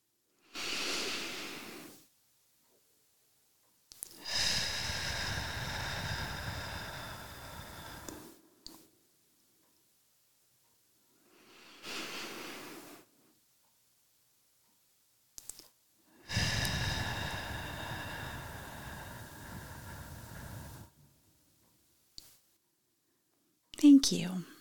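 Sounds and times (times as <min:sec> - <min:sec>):
slow deep breaths, inhaling and exhaling: 0:00.5 - 0:02.1, 0:04.0 - 0:09.1, 0:11.1 - 0:13.4, 0:16.0 - 0:21.4
speech: 0:24.0 - 0:24.5.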